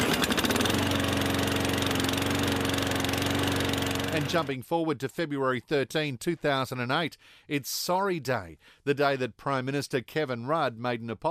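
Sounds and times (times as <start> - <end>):
small petrol lawn mower engine running: 0.0 - 4.6
speech: 4.2 - 11.2.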